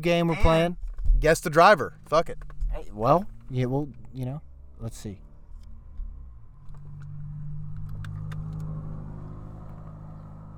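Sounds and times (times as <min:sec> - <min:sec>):
speech: 0:00.0 - 0:05.2
car driving past outside: 0:02.2 - 0:10.5.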